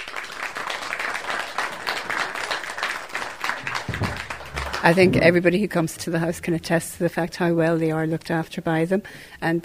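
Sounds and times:
room full of people applauding: 0.0 - 5.6
speech: 4.8 - 9.6.

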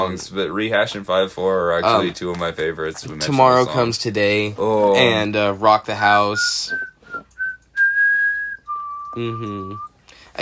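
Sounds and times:
speech: 0.0 - 6.9, 9.2 - 10.4
person whistling a short tune: 6.4 - 10.0.

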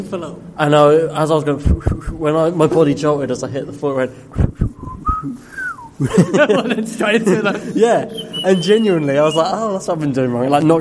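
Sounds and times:
speech: 0.0 - 10.7
person whistling: 4.4 - 6.0, 8.1 - 9.6
laughter: 5.9 - 9.4.

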